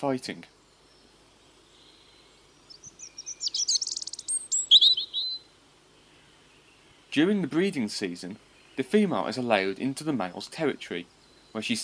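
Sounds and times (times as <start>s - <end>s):
speech: 0.0s - 0.6s, 7.1s - 11.8s
small songbird singing: 0.0s - 11.8s.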